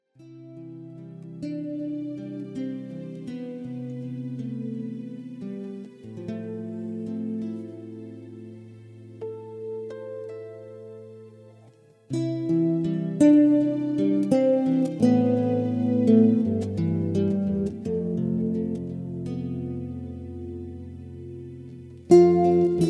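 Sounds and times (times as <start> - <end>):
light guitar: 0.0 - 22.8.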